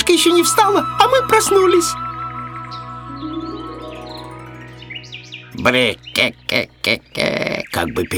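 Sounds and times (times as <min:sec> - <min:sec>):
steady humming tonal background: 0:00.0 - 0:06.6
sparrow chirping: 0:00.0 - 0:08.1
speech: 0:00.1 - 0:02.0, 0:05.6 - 0:08.1.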